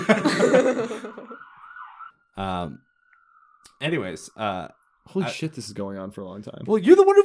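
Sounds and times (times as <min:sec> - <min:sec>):
laughter: 0:00.0 - 0:01.4
speech: 0:00.1 - 0:01.5, 0:02.4 - 0:02.9, 0:03.8 - 0:07.2
loud ambulance siren wailing with rising and falling tones: 0:00.9 - 0:02.2.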